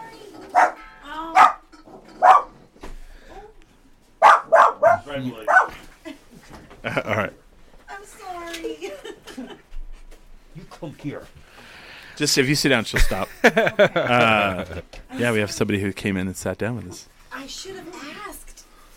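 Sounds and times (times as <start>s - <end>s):
dog barking excitedly at a guest: 0.4s - 2.6s, 4.2s - 5.8s
speech: 5.2s - 5.8s, 10.8s - 11.6s, 12.2s - 17.7s
laughter: 6.0s - 7.3s, 8.6s - 9.7s, 13.0s - 15.0s.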